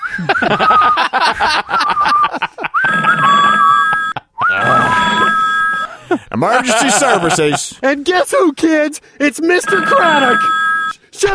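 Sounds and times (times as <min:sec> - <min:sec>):
laughter: 0:00.0 - 0:07.8
speech: 0:00.2 - 0:01.7, 0:06.4 - 0:10.6
telephone warbling at an emergency services dispatch desk: 0:02.8 - 0:06.0, 0:09.4 - 0:11.0.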